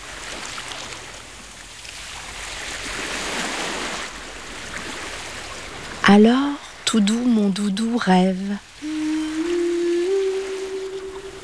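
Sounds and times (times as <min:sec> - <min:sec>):
sea waves heard in a seashell: 0:02.2 - 0:11.4
speech: 0:06.1 - 0:08.7.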